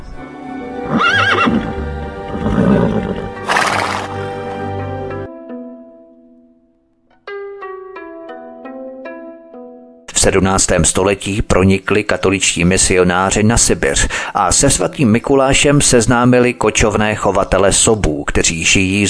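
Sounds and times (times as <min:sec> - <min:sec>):
held musical tone and short run of melodic notes: 0:00.2 - 0:10.0
horse whinnying loudly: 0:00.8 - 0:04.3
speech: 0:10.2 - 0:19.0.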